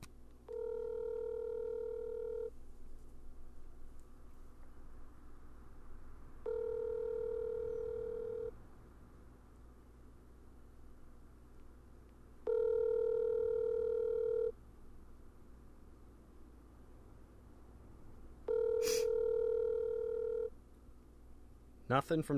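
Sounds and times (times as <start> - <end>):
ringback tone of an outgoing phone call over a speakerphone: 0.5 - 2.5, 6.4 - 8.6, 12.4 - 14.6, 18.5 - 20.5.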